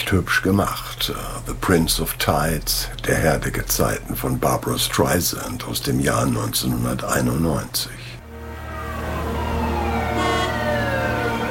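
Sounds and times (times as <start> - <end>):
speech: 0.0 - 8.0
low rumble of city traffic in New York: 0.0 - 11.4
emergency vehicle siren wailing in New York: 8.2 - 11.4.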